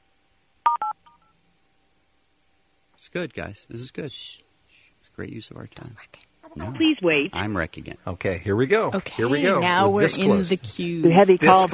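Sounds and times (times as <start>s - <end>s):
telephone keypad tones in an automated phone menu: 0.7s - 1.0s
speech: 3.0s - 4.5s, 5.2s - 11.7s.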